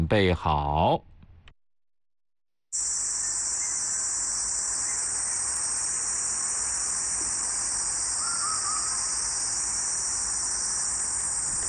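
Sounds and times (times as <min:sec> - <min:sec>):
speech: 0:00.0 - 0:01.1
huigu cicada calling with a high-pitched buzzing drone: 0:02.8 - 0:11.6.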